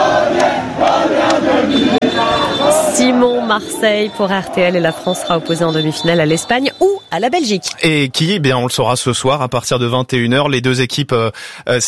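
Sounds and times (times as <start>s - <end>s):
football supporters cheering in the street: 0.0s - 8.4s
speech: 3.5s - 11.8s.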